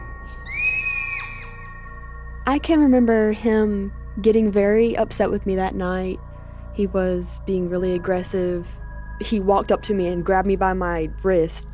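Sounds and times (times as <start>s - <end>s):
young girl's terrified scream at home: 0.4s - 1.6s
speech: 2.5s - 6.2s, 6.8s - 11.7s.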